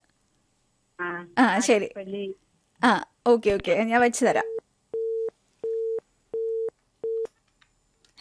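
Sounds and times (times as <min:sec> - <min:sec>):
speech: 0:01.3 - 0:04.5
telephone busy tone beeps after a call is cut off: 0:04.5 - 0:07.3.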